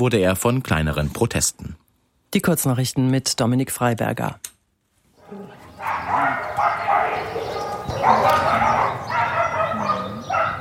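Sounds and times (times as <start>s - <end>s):
speech: 0.0s - 4.5s
many dogs barking in an animal shelter: 5.2s - 10.6s.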